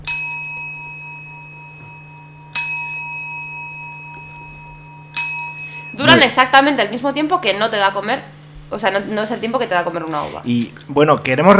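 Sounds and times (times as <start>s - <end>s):
clock tower bells ringing the New Year chimes: 0.0s - 7.8s
speech: 6.0s - 11.5s.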